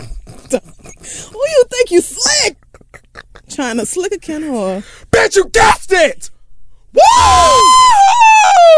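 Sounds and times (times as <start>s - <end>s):
speech: 1.9s - 2.1s, 3.6s - 6.3s, 7.0s - 8.7s
person imitating a goofy cartoon character's yell: 5.2s - 6.1s, 7.0s - 8.7s.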